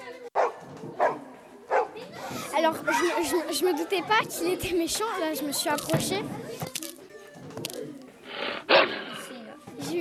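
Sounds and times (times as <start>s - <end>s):
low murmur: 0.0s - 9.9s
dog barking: 0.4s - 2.0s
speech: 2.6s - 6.7s.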